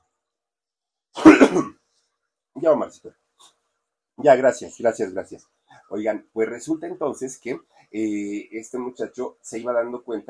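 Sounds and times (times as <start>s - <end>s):
rough cough: 1.2s - 1.8s
throat clearing: 1.2s - 1.8s
speech: 2.6s - 3.5s, 4.2s - 10.2s.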